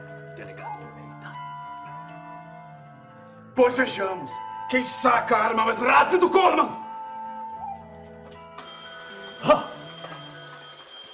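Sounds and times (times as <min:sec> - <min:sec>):
speech: 0:03.6 - 0:06.8
telephone bell ringing: 0:08.6 - 0:11.1.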